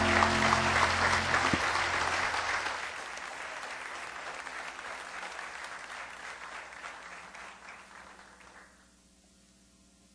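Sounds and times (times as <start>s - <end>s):
low hum: 0.0s - 2.8s
audience applause at a morning worship service: 0.0s - 8.8s.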